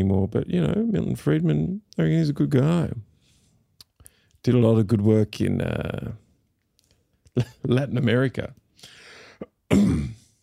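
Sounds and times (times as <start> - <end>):
speech: 0.0 - 3.1, 4.4 - 6.2, 7.4 - 10.2
loud cough into a microphone: 9.4 - 10.4.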